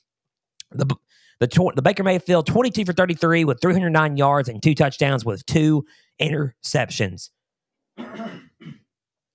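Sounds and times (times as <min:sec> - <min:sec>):
speech: 0:00.7 - 0:07.4
person clearing throat: 0:08.0 - 0:08.9.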